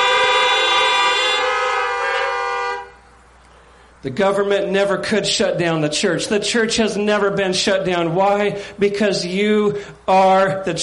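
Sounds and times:
several car horns honking: 0.0s - 3.4s
faint noise: 0.0s - 10.8s
speech: 4.0s - 10.8s.

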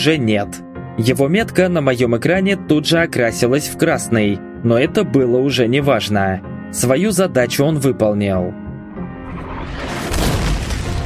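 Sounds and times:
speech: 0.0s - 8.6s
rocket explosion in a sci-fi combat scene: 9.1s - 11.0s.

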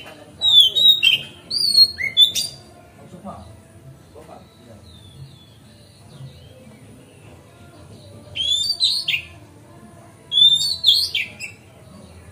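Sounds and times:
magpie-robin song tutor bird singing bright rising and falling whistles on a terrace: 0.4s - 2.7s, 4.6s - 6.9s, 8.2s - 9.4s, 10.3s - 11.8s.

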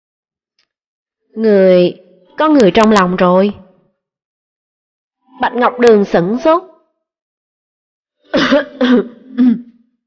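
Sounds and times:
speech: 1.3s - 3.6s, 5.4s - 6.7s, 8.3s - 9.6s
person coughing after choking on tea: 8.4s - 9.7s.

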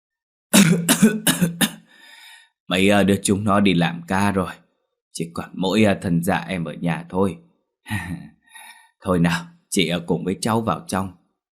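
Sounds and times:
speech: 0.6s - 1.6s, 2.7s - 4.6s, 5.2s - 8.4s, 9.0s - 11.2s
old man coughing: 0.6s - 1.9s.

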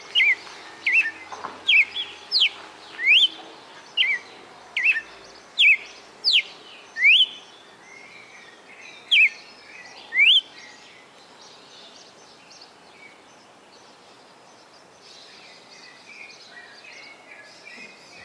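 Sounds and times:
faint background hiss: 0.0s - 18.2s
Red-cowled cardinal song of sharp slurred whistled notes: 0.2s - 3.4s, 4.8s - 8.1s, 9.1s - 9.4s, 10.2s - 10.8s.

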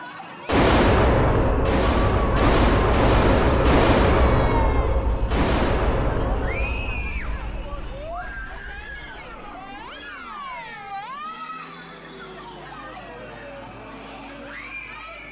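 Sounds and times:
gunfire from a gun being fired: 0.5s - 9.9s.

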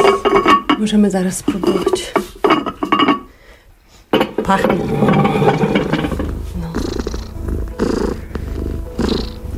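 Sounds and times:
speech: 0.1s - 2.2s, 4.5s - 5.8s
cat purring: 4.5s - 9.5s.

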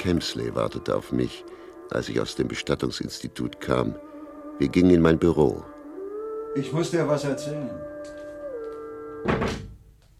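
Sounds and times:
speech: 0.0s - 5.8s, 6.6s - 8.2s
office door pushed shut with a dull thunk: 9.2s - 9.8s.

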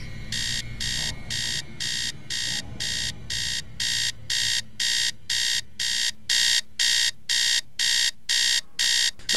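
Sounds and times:
alarm clock ringing in the night in an old house: 0.0s - 9.3s
low hum: 0.0s - 9.3s.

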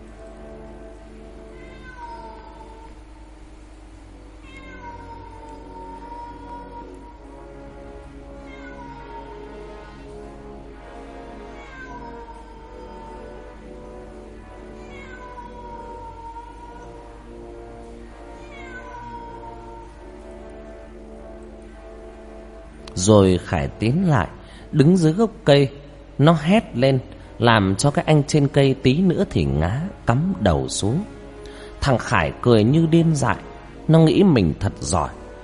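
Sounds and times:
cat meowing eerily: 1.5s - 3.0s, 4.4s - 7.3s, 8.4s - 10.0s, 11.4s - 13.6s, 14.6s - 17.2s, 18.3s - 20.0s
steady patter of rain: 19.6s - 25.4s
speech: 23.0s - 31.2s, 31.8s - 35.2s.

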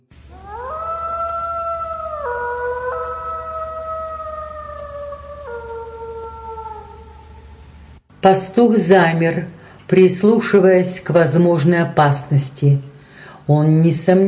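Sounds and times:
animal howling: 0.2s - 7.8s
speech: 8.2s - 12.9s, 13.5s - 14.2s.

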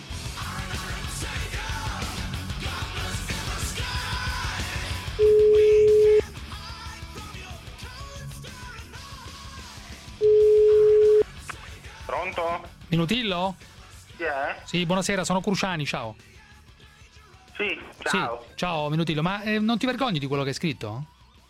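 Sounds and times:
telephone ringback tone from an outgoing call: 5.2s - 6.2s, 10.2s - 11.2s
speech: 13.0s - 16.4s, 17.6s - 21.2s.

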